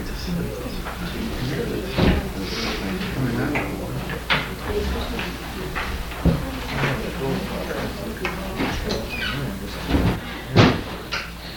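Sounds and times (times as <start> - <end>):
faint voices: 0.0 - 11.5
steady room hum: 0.0 - 11.5
door being opened with short wooden clunks and rattles: 8.5 - 11.1.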